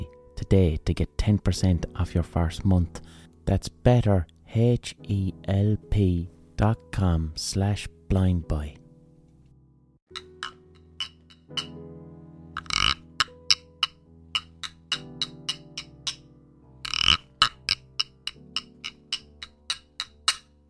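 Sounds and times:
speech: 0:00.5 - 0:08.8
crisp wooden taps and clicks: 0:10.1 - 0:11.8, 0:12.6 - 0:16.2, 0:16.8 - 0:20.6
wooden frog instrument ratchety croaks: 0:10.1 - 0:11.9, 0:12.5 - 0:20.6.

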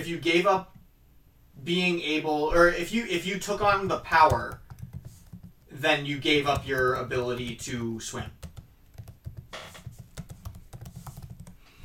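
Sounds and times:
speech: 0:00.0 - 0:00.8, 0:01.6 - 0:04.6, 0:05.8 - 0:08.4
rapid typing on a computer keyboard: 0:03.6 - 0:11.8.

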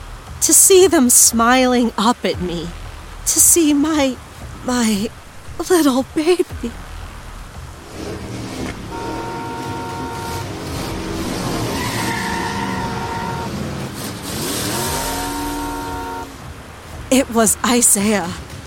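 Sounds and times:
tire and road noise on a rough road: 0:00.0 - 0:18.6
speech: 0:00.4 - 0:06.9, 0:17.1 - 0:18.5
car engine roaring and revving while speeding along a rough dirt road: 0:06.5 - 0:17.1.

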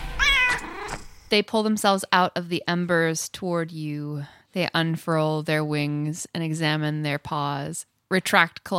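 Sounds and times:
short high-pitched cat meow: 0:00.2 - 0:01.0
speech: 0:01.3 - 0:08.7.

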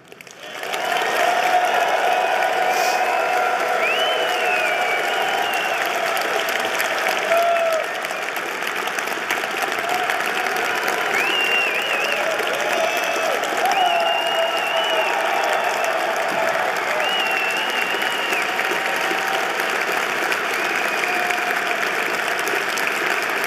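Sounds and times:
audience applause and cheering: 0:00.0 - 0:23.4
high whistles: 0:02.7 - 0:06.0, 0:11.1 - 0:16.1, 0:16.8 - 0:18.8.

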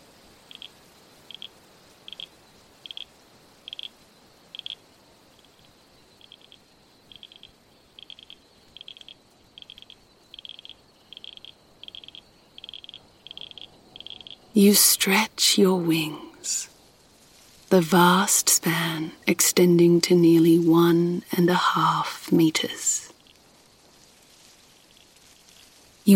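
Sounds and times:
soft hiss: 0:00.0 - 0:26.1
frogs croaking along the banks of a creek by a salt marsh: 0:00.1 - 0:15.3, 0:22.6 - 0:26.1
speech: 0:14.6 - 0:16.7, 0:17.7 - 0:22.9.

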